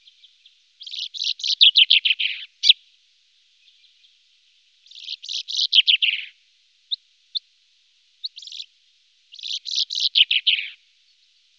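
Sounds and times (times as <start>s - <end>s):
common chaffinch singing in a wetland area: 0.0s - 2.8s, 4.8s - 6.3s, 8.2s - 8.7s, 9.3s - 10.8s.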